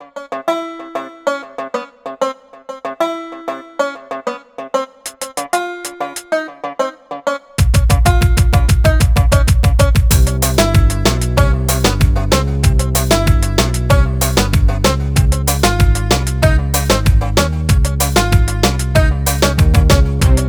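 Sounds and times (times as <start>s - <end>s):
exotic hip hop beat in C minor: 4.8s - 20.4s.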